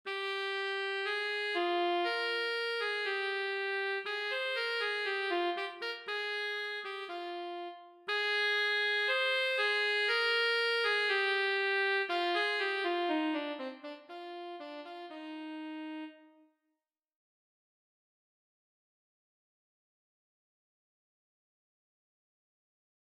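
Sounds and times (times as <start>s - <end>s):
tenor saxophone etude: 0.1s - 16.5s.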